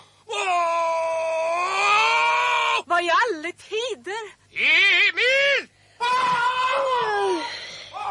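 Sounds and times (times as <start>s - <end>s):
man at the kitchen table screaming in pain: 0.3s - 2.8s, 4.7s - 8.0s.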